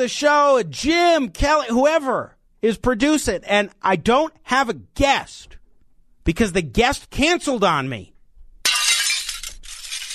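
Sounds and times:
speech: 0.0 - 5.6, 6.3 - 8.1
glass shattering sound effect: 8.6 - 10.1
glass shards tinkling: 8.7 - 10.1.

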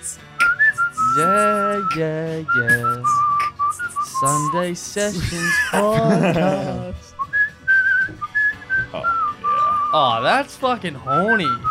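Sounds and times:
person whistling a bright melody: 0.0 - 4.7, 7.1 - 10.1, 11.1 - 11.6
speech: 1.2 - 3.3, 4.2 - 7.0, 10.0 - 11.6
people talking and chuckling: 4.0 - 7.2.

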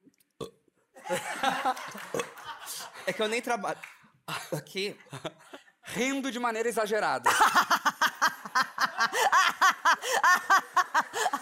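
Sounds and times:
small croaky burps: 0.4 - 0.6
laughter: 1.0 - 3.5, 7.3 - 11.4
speech: 1.1 - 1.9, 3.1 - 5.4, 6.0 - 7.8.

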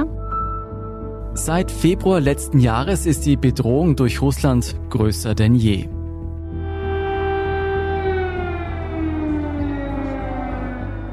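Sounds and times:
speech: 1.4 - 6.0
air-raid siren wailing in Kyiv: 6.4 - 11.1.

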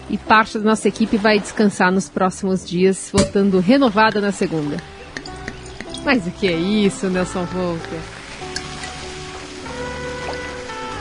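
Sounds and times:
speech: 0.1 - 5.0, 6.0 - 8.2
ocean surf: 3.6 - 10.9.

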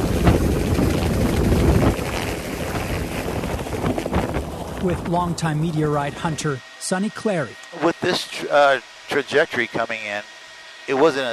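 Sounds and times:
gusty wind buffeting: 0.0 - 6.6
helicopter flying: 0.0 - 11.3
speech: 4.8 - 11.3.

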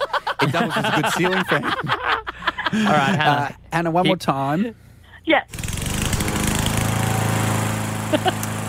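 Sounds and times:
laughter: 0.0 - 3.6, 8.1 - 8.4
speech: 0.4 - 5.6
lawn mower engine droning: 5.5 - 8.6.

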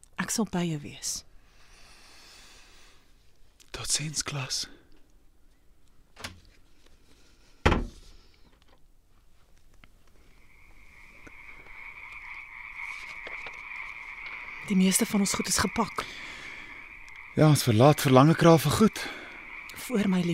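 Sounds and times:
speech: 0.3 - 1.3, 3.8 - 4.8, 14.7 - 16.3, 17.4 - 19.1, 19.9 - 20.3
door being pulled shut with click and heavy thud: 7.6 - 8.0
steady croaking frog-like drone: 10.3 - 20.3.

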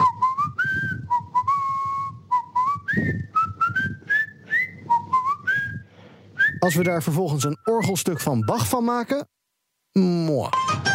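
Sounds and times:
person whistling a short wandering tune: 0.0 - 8.6
speech: 6.6 - 9.4, 10.0 - 10.8.

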